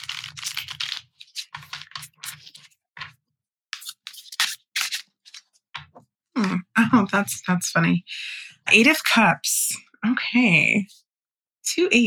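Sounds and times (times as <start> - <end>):
tarot cards being shuffled: 0.0 - 3.1, 3.8 - 5.9
speech: 6.4 - 11.0, 11.7 - 12.0.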